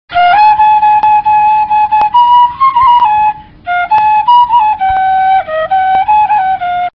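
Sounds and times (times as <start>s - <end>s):
pifano fife playing: 0.1s - 6.9s.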